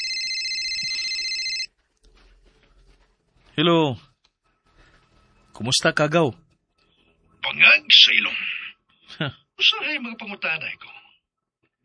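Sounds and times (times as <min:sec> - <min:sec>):
cellphone ringtone of incoming call: 0:00.0 - 0:01.7
speech: 0:03.6 - 0:04.1, 0:05.6 - 0:06.4, 0:07.6 - 0:08.6, 0:09.2 - 0:11.0.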